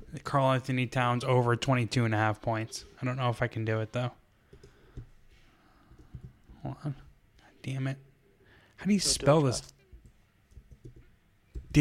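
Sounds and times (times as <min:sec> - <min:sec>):
speech: 0:00.1 - 0:04.2, 0:06.8 - 0:07.0, 0:07.6 - 0:08.1, 0:08.8 - 0:09.8
typing on a computer keyboard: 0:04.5 - 0:05.1, 0:05.9 - 0:06.6, 0:09.9 - 0:11.7.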